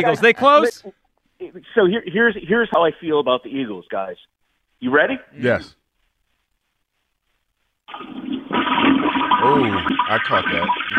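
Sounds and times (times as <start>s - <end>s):
speech: 0.0s - 5.8s, 7.9s - 8.3s, 9.4s - 10.9s
toilet flush with loud rushing water: 7.9s - 10.9s.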